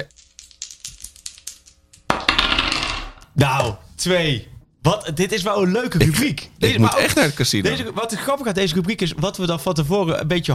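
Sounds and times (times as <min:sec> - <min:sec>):
die rolling and clattering across a hard tabletop: 0:02.0 - 0:03.2
speech: 0:03.4 - 0:10.5.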